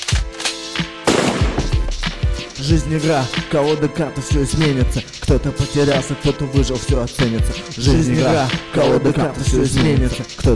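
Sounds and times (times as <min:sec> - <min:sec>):
gunshots: 0:00.0 - 0:01.9
sustained musical backdrop with steady tones: 0:00.0 - 0:10.5
speech: 0:02.6 - 0:10.5.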